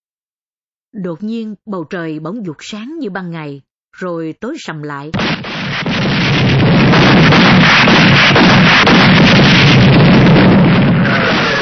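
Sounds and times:
speech: 0:00.9 - 0:05.5
anti-aircraft artillery firing at the wartime Đồng Lộc road junction in Vietnam: 0:05.2 - 0:11.6
bombs exploding at the wartime Đồng Lộc road junction in Vietnam: 0:05.2 - 0:11.6.

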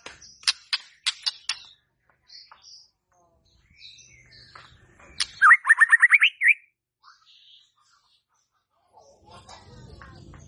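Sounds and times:
White-rumped shama song: 0:00.0 - 0:07.8.

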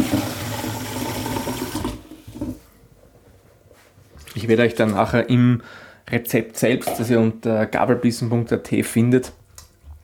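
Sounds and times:
water poured into a cooking pot of potato and pumpkin goulash: 0:00.0 - 0:02.6
speech: 0:04.4 - 0:09.4.

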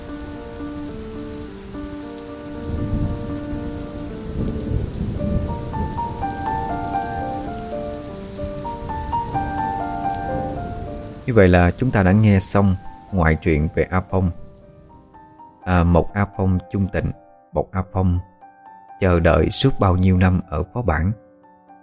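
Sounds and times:
heavy rain falling: 0:00.0 - 0:15.4
speech: 0:11.3 - 0:14.4, 0:15.7 - 0:18.3, 0:19.0 - 0:21.2.

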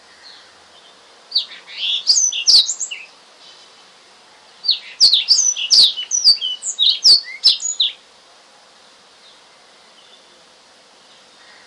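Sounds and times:
Oriental magpie-robin whistled and slurred notes with sharp clicks: 0:01.3 - 0:03.1, 0:04.6 - 0:08.0.

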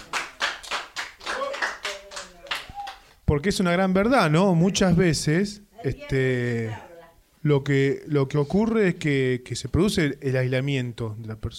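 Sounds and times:
audience applause for a guest at a live radio programme: 0:00.0 - 0:03.0
speech: 0:03.3 - 0:11.5.

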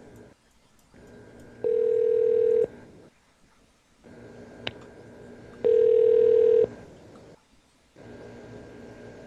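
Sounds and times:
electronic telephone ring tone on the line: 0:01.6 - 0:02.7, 0:05.6 - 0:06.7.

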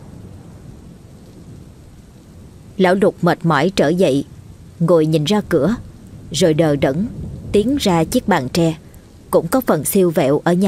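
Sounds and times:
heavy pouring rain: 0:00.0 - 0:10.6
thunder rumbling: 0:00.0 - 0:10.6
speech: 0:02.8 - 0:10.6.

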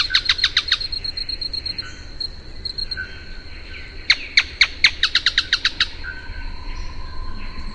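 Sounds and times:
Canebrake groundcreeper Clibanornis dendrocolaptoides giving sharp downslurred notes: 0:00.0 - 0:07.7.

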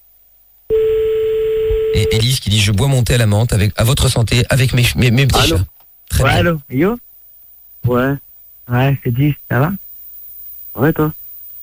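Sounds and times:
telephone ringback tone while calling someone back: 0:00.7 - 0:02.2
speech: 0:02.0 - 0:07.0, 0:07.8 - 0:09.8, 0:10.8 - 0:11.6.

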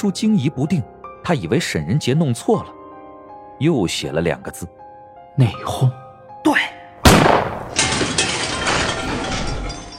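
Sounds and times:
speech: 0:00.0 - 0:02.8, 0:03.6 - 0:04.8, 0:05.4 - 0:06.7
gunshot: 0:07.0 - 0:08.0
noisy lingering rattle and ringing: 0:07.8 - 0:09.9.

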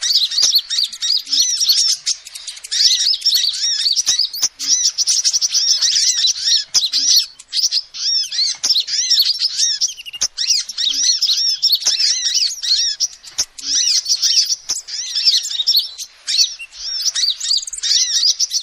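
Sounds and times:
shrill lovebird chatter: 0:00.0 - 0:18.6
sharp clicks: 0:00.2 - 0:07.8, 0:08.4 - 0:14.9.

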